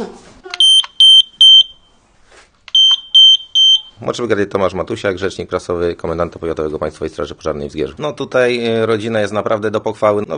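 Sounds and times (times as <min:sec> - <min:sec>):
carbon monoxide detector alarm beeping: 0:00.6 - 0:02.0, 0:02.7 - 0:04.0
speech: 0:04.0 - 0:10.3.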